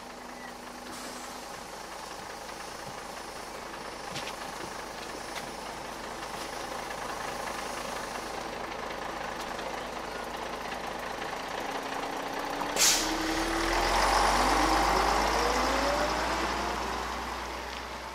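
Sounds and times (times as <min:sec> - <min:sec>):
bus engine idling and revving: 0:00.0 - 0:18.1
bus air brakes hissing: 0:00.6 - 0:08.6, 0:12.7 - 0:13.4.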